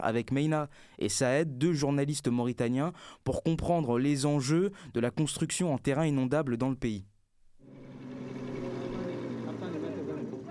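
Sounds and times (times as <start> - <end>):
speech: 0.0 - 7.1
heavy truck engine rumbling in sand dunes: 7.6 - 10.4.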